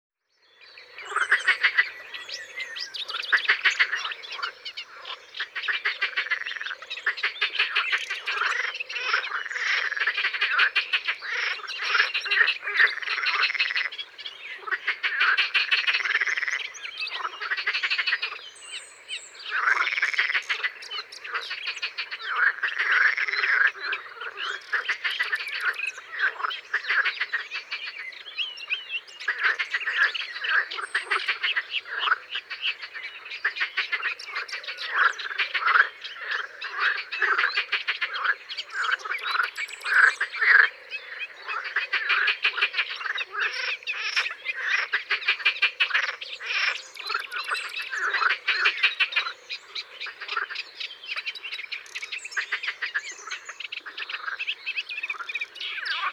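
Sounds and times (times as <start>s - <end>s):
green frog croaking: 0.8s - 18.4s, 19.5s - 28.3s, 28.9s - 56.1s.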